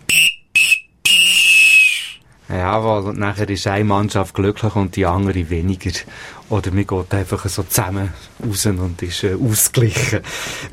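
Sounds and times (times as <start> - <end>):
referee whistle blasts signalling the final whistle of a match: 0.0 - 2.2
speech: 2.6 - 10.7.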